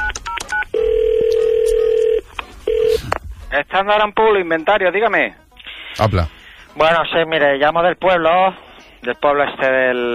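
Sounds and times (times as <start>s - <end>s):
long steady telephone line tone: 0.0s - 3.0s
speech: 3.6s - 5.4s, 6.0s - 10.1s.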